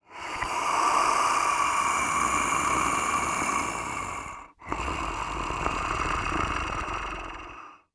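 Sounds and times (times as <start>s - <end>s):
scary alien breathing: 0.0s - 7.9s.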